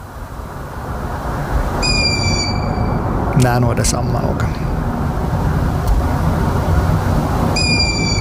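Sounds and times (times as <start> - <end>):
low rumbling background noise: 0.0 - 8.1
long-eared owl begging call: 1.8 - 3.0, 7.6 - 8.1
speech: 3.4 - 4.6.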